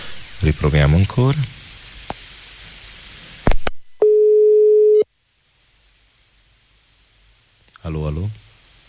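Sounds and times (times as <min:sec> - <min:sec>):
phone line static hiss: 0:00.0 - 0:08.8
speech: 0:00.4 - 0:01.6
telephone ringback tone on an outgoing call: 0:04.0 - 0:05.0.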